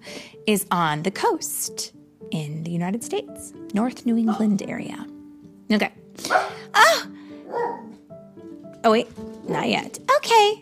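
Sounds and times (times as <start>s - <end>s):
speech: 0.5s - 7.1s, 8.8s - 10.6s
puppy dog giving a sharp high yip: 6.2s - 6.7s, 7.5s - 8.0s.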